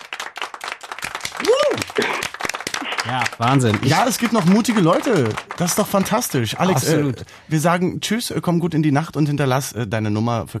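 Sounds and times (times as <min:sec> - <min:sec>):
applause: 0:00.0 - 0:06.8
speech: 0:01.4 - 0:02.4, 0:03.0 - 0:10.5.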